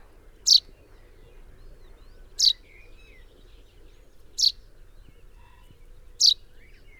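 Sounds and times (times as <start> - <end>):
common chaffinch Fringilla coelebs giving short sharp high calls: 0.5 - 0.7, 2.4 - 2.6, 4.4 - 4.6, 6.2 - 6.4.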